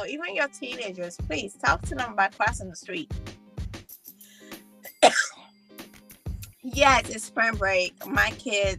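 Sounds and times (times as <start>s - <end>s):
speech: 0.0s - 3.4s, 6.6s - 8.7s
throat clearing: 4.9s - 5.4s
sick person coughing: 4.9s - 5.5s.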